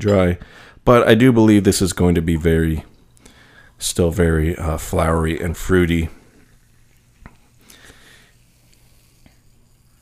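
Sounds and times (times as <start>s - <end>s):
speech: 0.0s - 2.9s, 3.8s - 6.2s
fizzing bubbles in a poured sparkling drink: 2.9s - 10.0s.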